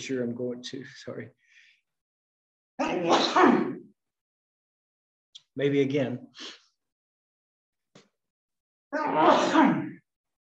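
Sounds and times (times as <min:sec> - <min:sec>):
speech: 0:00.0 - 0:01.4, 0:02.8 - 0:03.9, 0:05.6 - 0:06.6, 0:08.9 - 0:09.9
suppressed sneeze: 0:02.8 - 0:03.8.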